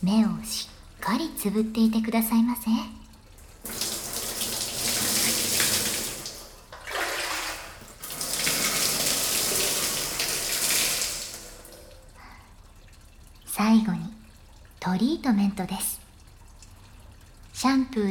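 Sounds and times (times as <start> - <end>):
speech: 0.0 - 3.0, 14.9 - 16.0, 17.6 - 18.0
warm running water rinsing hair: 3.4 - 12.2.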